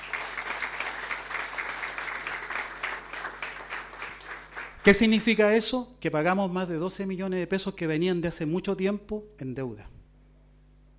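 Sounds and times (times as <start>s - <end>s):
audience applauding at a hospital in Chile: 0.0s - 5.1s
speech: 4.8s - 9.9s.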